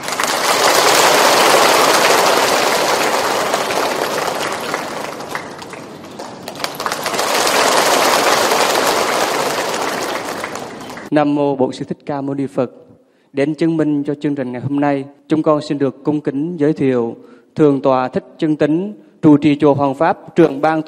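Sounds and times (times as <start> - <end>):
crowd applauding to welcome a guest at a Buddhist event: 0.0 - 11.1
speech: 11.2 - 20.8.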